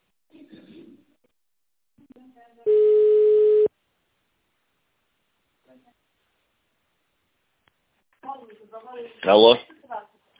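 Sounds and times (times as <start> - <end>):
telephone ringback tone as a call is transferred: 2.7 - 3.7
speech: 8.4 - 9.8.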